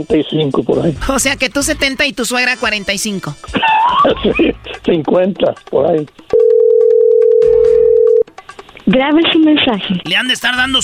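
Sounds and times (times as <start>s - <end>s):
speech: 0.0s - 6.4s, 8.9s - 10.8s
laughter: 3.4s - 4.8s
telephone ringing tone as a call goes through: 6.3s - 8.2s.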